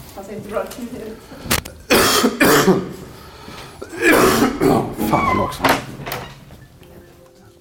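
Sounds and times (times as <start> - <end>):
speech: 0.2 - 3.1, 4.0 - 5.9
man's sudden coughing fit: 1.9 - 3.0, 3.8 - 5.2.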